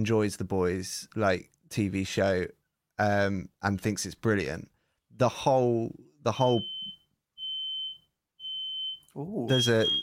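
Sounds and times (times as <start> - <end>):
speech: 0.0 - 6.7, 9.2 - 10.0
smoke alarm beeping with a high-pitched tone: 6.4 - 10.0.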